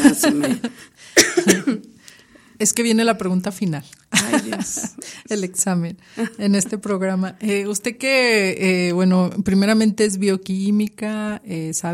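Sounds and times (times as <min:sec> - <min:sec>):
laughter: 0:00.0 - 0:00.9, 0:04.2 - 0:05.0
speech: 0:00.0 - 0:01.9, 0:02.6 - 0:11.9
person coughing: 0:00.3 - 0:01.9.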